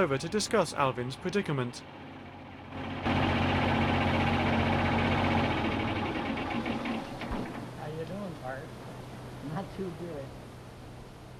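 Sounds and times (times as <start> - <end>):
speech: 0.0 - 2.1, 9.6 - 10.4
old cabless farm tractor engine running: 0.0 - 7.8.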